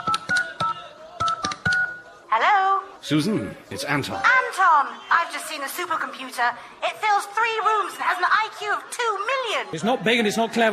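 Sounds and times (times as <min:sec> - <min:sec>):
touch-tone keypad beeps as a phone number is dialed: 0:00.0 - 0:02.0
speech: 0:03.0 - 0:10.7.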